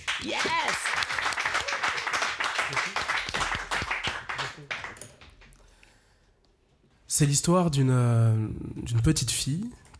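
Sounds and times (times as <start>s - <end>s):
audience applauding: 0.0s - 5.6s
speech: 0.2s - 1.1s, 7.2s - 9.9s.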